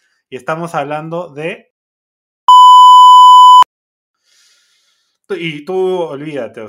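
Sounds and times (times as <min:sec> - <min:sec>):
speech: 0:00.3 - 0:01.7, 0:05.3 - 0:06.6
high-pitched censor bleep: 0:02.5 - 0:03.7.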